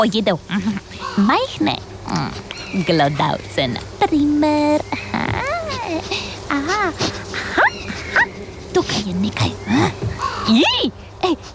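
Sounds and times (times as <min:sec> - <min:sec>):
speech: 0:00.0 - 0:08.2, 0:08.8 - 0:11.5
raven cawing: 0:00.9 - 0:01.4, 0:07.0 - 0:08.6, 0:09.6 - 0:10.6.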